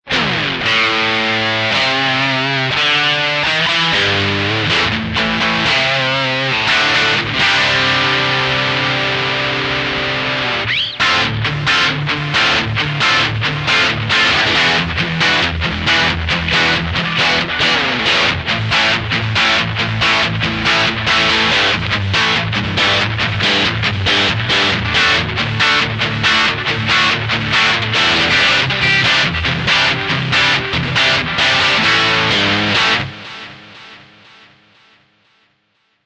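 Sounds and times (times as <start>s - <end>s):
dirty guitar: 0.0s - 35.4s.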